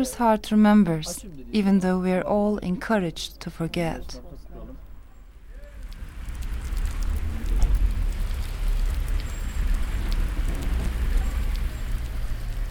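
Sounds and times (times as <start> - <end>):
speech: 0.0 - 4.3
heavy rain pouring: 5.3 - 12.6
water gushing down in a river toward the Bosphorus: 5.4 - 12.6.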